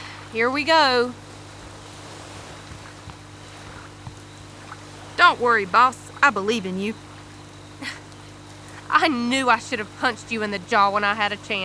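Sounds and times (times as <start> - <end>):
motorboats approaching on open water with low engine drone: 0.0 - 11.6
rushing water on open water: 0.0 - 11.6
speech: 0.3 - 1.2, 5.2 - 7.0, 7.8 - 8.0, 9.0 - 11.6
wind noise: 0.8 - 6.6.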